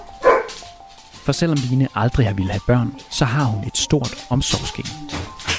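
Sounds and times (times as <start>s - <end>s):
dogs barking: 0.1s - 0.7s
speech: 1.3s - 5.4s.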